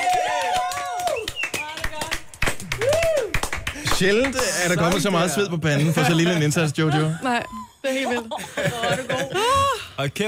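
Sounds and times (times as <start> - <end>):
bright cheering or whistle-like voices: 0.0 - 3.7
group of people clapping: 0.0 - 5.3
laughter: 3.8 - 10.1
speech: 4.0 - 10.2.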